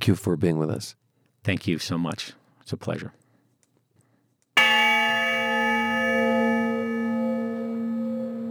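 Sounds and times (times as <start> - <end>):
speech: 0.0 - 3.2
deep honor bell tolling: 4.6 - 8.4.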